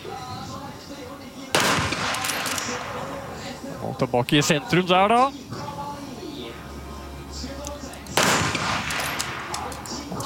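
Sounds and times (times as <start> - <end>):
outdoor noise: 0.0 - 10.2
rifle shot at a shooting competition: 1.5 - 3.5, 8.1 - 10.1
speech: 4.0 - 5.5.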